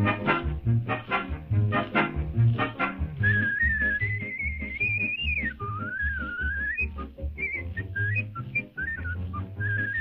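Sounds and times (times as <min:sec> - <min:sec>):
rhythmic music: 0:00.0 - 0:10.0
man whistling a melody: 0:03.2 - 0:10.0.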